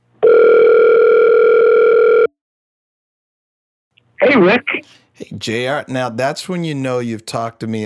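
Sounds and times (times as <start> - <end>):
electronic phone ringing tone of an outgoing call: 0.2 - 2.3
speech: 4.4 - 7.8.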